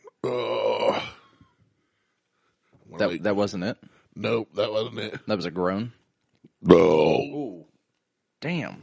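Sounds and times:
loud drawn-out burp: 0.0 - 1.4, 6.6 - 7.4
speech: 3.0 - 6.0, 6.6 - 7.6, 8.4 - 8.8.

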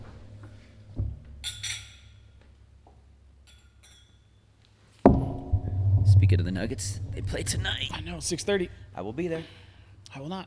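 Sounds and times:
glasses clinking in a whiskey toast: 1.4 - 2.2, 3.4 - 4.4
sudden knock: 5.1 - 8.9
soft bump: 5.1 - 9.0
speech: 6.3 - 10.4.

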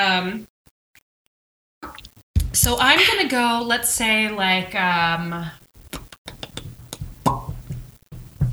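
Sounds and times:
speech: 0.0 - 0.5, 2.6 - 5.6
person stepping in time on a hard floor: 1.9 - 3.2, 6.0 - 8.5.

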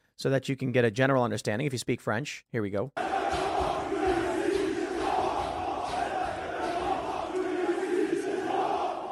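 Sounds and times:
speech: 0.2 - 3.2
angry crowd shouting at a street protest in France: 3.0 - 9.0.

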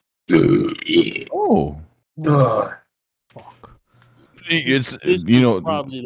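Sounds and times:
speech: 0.3 - 2.8, 4.5 - 6.0
person burping deliberately: 0.3 - 3.6.

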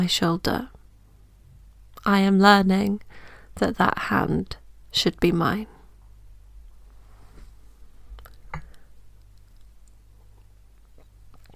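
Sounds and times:
speech: 0.0 - 0.7, 2.0 - 5.8
low hum: 0.0 - 11.5
person sipping water: 8.1 - 11.5.

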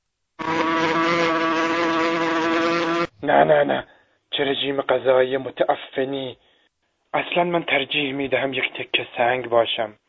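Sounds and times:
fly buzzing: 0.4 - 3.2
speech: 3.2 - 6.5, 7.1 - 10.0.

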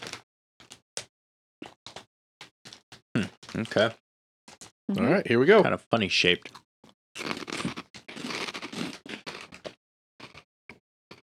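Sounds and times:
vegan white cheddar snacks being chewed: 2.7 - 4.7, 6.4 - 10.4
speech: 3.5 - 4.0, 4.9 - 6.6.

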